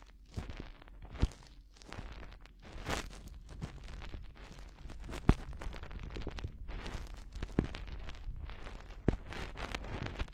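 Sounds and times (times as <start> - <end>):
finger poking and rubbing at an ear, muffled rustling: 0.4 - 10.3
soft low thumps: 2.9 - 10.3.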